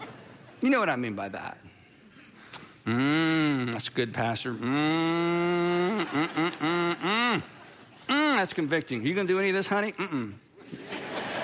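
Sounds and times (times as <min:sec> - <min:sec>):
speech: 0:00.6 - 0:01.8, 0:02.8 - 0:07.6, 0:08.4 - 0:10.4
person imitating a cow mooing: 0:02.9 - 0:03.8, 0:04.6 - 0:07.4
laughter: 0:04.5 - 0:08.6, 0:09.9 - 0:11.4.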